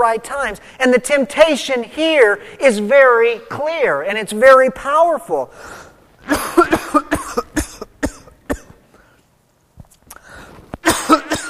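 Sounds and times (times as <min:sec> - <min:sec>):
speech: 0:00.0 - 0:07.4
person coughing and clearing throat from a cold: 0:06.2 - 0:08.8, 0:10.8 - 0:11.4.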